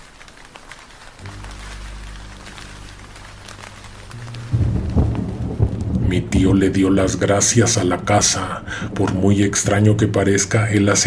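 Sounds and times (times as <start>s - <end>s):
heavy rain: 0.0s - 11.0s
thunder rumbling: 1.2s - 11.0s
speech: 6.1s - 11.0s.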